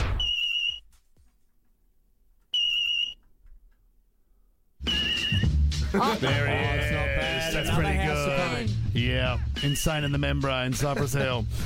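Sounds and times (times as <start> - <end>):
shrill fire alarm beeps: 0.2 - 0.8, 2.5 - 3.2, 4.9 - 5.5, 9.6 - 10.1
speech: 6.0 - 11.6.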